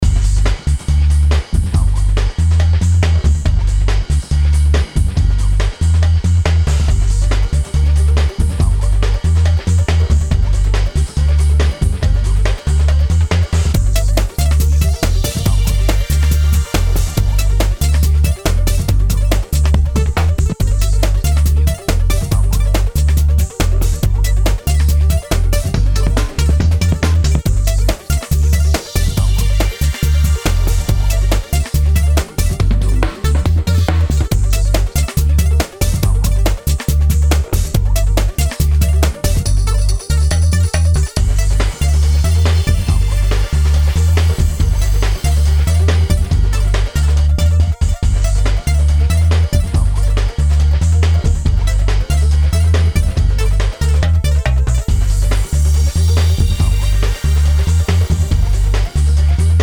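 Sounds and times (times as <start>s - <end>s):
electronic dance music: 0.0s - 59.6s.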